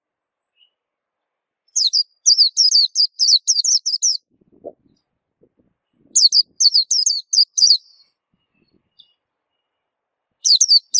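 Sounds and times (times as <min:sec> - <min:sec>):
white-eye high sweet down-slurred twittering song: 0:01.7 - 0:04.3, 0:06.2 - 0:09.8, 0:10.4 - 0:10.9.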